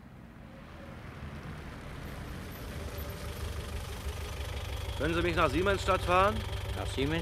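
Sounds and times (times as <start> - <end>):
traffic rumble on a street: 0.0 - 7.2
taxi engine idling on a street: 1.6 - 7.2
speech: 5.0 - 7.2.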